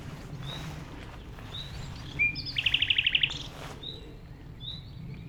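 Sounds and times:
common nightingale song at Chindrieux in France: 0:00.0 - 0:04.2.

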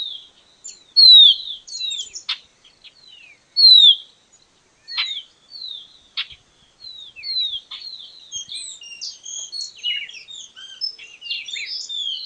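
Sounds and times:
Baywing Agelaioides badius calls: 0:00.0 - 0:12.2.

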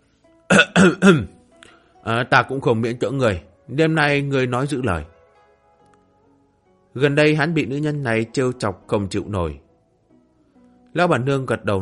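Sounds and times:
short loud throat-clearing coughs: 0:00.5 - 0:01.3
speech: 0:00.8 - 0:01.4, 0:02.0 - 0:05.1, 0:06.9 - 0:09.6, 0:10.9 - 0:11.8
brief faint breath: 0:01.6 - 0:02.0.

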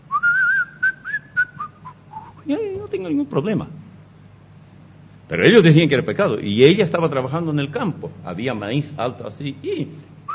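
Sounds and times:
person whistling a short tune: 0:00.1 - 0:02.4
speech: 0:02.5 - 0:03.8, 0:05.3 - 0:10.1.

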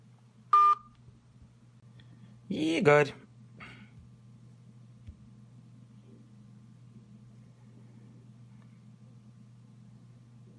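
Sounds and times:
faint low hum: 0:00.0 - 0:10.5
telephone keypad tone beeping as a phone number is dialed: 0:00.5 - 0:00.9
speech: 0:02.5 - 0:03.2.

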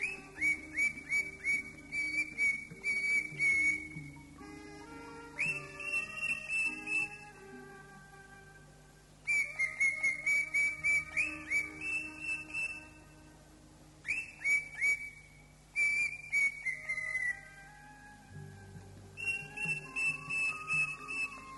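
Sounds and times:
Greater green leafbird singing clear whistled notes: 0:00.0 - 0:04.4, 0:05.4 - 0:07.3, 0:09.2 - 0:13.0, 0:14.1 - 0:17.5, 0:19.2 - 0:21.5.

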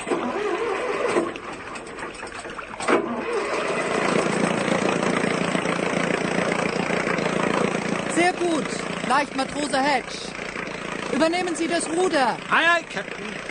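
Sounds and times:
boat engine starting and running in the harbour at Bonifacio: 0:00.0 - 0:13.4
speech: 0:08.4 - 0:10.4, 0:11.1 - 0:13.4.

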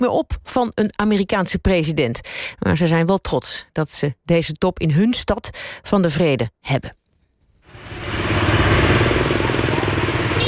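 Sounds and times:
speech: 0:00.0 - 0:07.0
mopeds buzzing through narrow old-town streets in Vietnam: 0:07.7 - 0:10.4.

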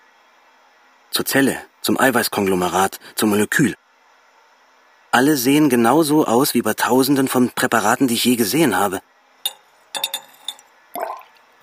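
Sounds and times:
speech: 0:01.1 - 0:03.8, 0:05.1 - 0:09.1
glass measuring cylinder clinking in a laboratory: 0:09.5 - 0:11.2.

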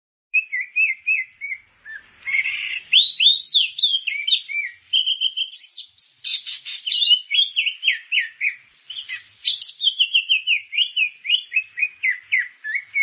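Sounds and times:
grey-cheeked bulbul song with downslurred whistles: 0:00.4 - 0:13.0.

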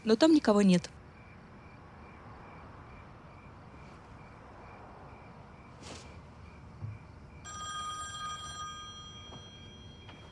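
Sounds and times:
speech: 0:00.0 - 0:01.0
soft rustle: 0:05.7 - 0:06.4
telephone ringing with bright buzzing electronic ring: 0:07.4 - 0:10.3.

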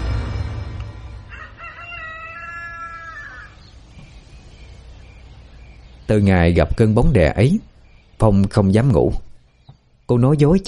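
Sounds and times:
rooster crowing behind a house: 0:01.1 - 0:03.7
speech: 0:06.1 - 0:09.2, 0:10.1 - 0:10.6.

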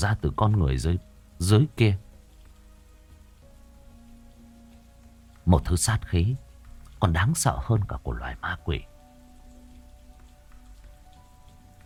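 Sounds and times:
speech: 0:00.0 - 0:02.0, 0:05.5 - 0:06.4, 0:07.0 - 0:08.9
steady rain falling and pattering on a surface: 0:00.0 - 0:11.8.

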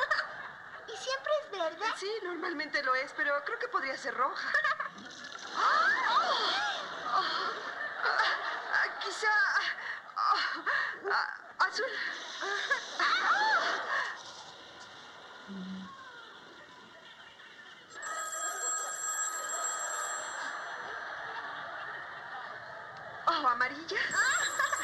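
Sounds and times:
laughter: 0:00.0 - 0:24.8
speech: 0:01.6 - 0:04.8, 0:05.6 - 0:09.9, 0:10.6 - 0:13.9
telephone ringing: 0:17.9 - 0:22.9, 0:24.1 - 0:24.8.

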